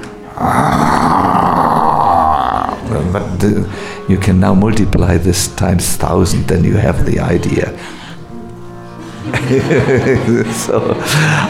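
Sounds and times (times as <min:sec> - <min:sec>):
man's voice imitating a lion's roar: 0:00.3 - 0:03.2
speech: 0:00.4 - 0:00.7, 0:03.4 - 0:08.0, 0:09.5 - 0:11.4
laughter: 0:09.0 - 0:11.4.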